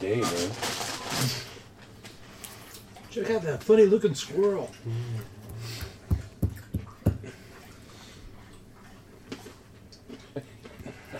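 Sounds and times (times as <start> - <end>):
speech: 0.1 - 1.4, 3.1 - 5.4
dog lapping water: 4.6 - 9.7.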